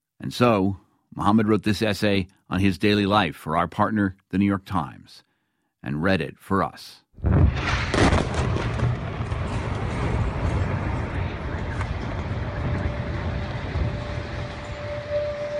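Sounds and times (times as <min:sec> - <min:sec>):
speech: 0:00.3 - 0:07.9
bombing explosion blast: 0:07.2 - 0:14.8
heavy low rumbling roar of bombing booms: 0:07.2 - 0:15.5.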